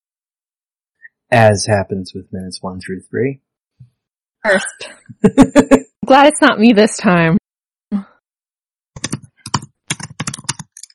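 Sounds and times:
speech: 1.3s - 3.5s, 4.4s - 7.4s
laughter: 5.2s - 6.0s
typing on a computer keyboard: 9.0s - 10.9s.

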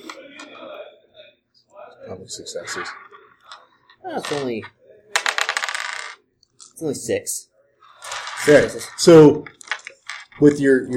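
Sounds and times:
speech: 2.1s - 3.1s, 4.0s - 4.8s, 6.8s - 7.5s, 8.4s - 9.6s, 10.4s - 10.9s
dice rolled across a hard tabletop during a game: 2.6s - 6.8s, 7.9s - 10.9s.

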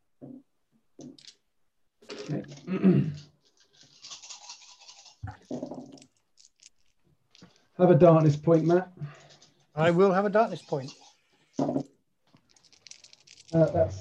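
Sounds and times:
speech: 2.3s - 3.3s, 7.8s - 9.0s, 9.8s - 11.0s, 13.6s - 14.0s
dice rattling and skittering across a hard surface: 3.5s - 7.6s, 8.6s - 14.0s.

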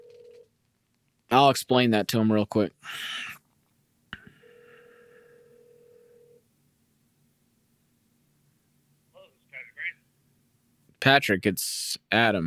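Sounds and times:
speech: 1.3s - 3.3s, 11.0s - 12.4s
voice answering over the phone line: 9.5s - 10.0s.

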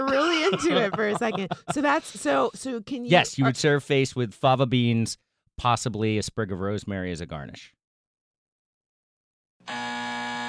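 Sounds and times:
laughter: 0.0s - 2.5s, 3.1s - 3.8s
speech: 0.5s - 7.8s
harsh raspy electronic buzzer: 9.6s - 10.4s.

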